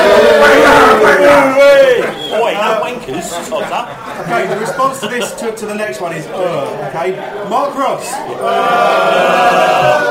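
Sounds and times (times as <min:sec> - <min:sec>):
small group of football fans cheering: 0:00.0 - 0:02.9, 0:08.3 - 0:10.0
laughter: 0:01.0 - 0:05.7
speech: 0:05.0 - 0:10.0.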